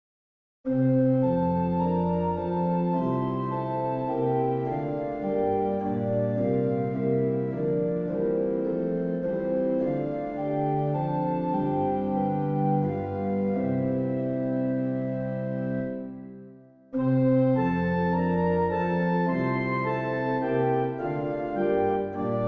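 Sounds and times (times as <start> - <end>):
organ playing a hymn: 0.7 - 22.4.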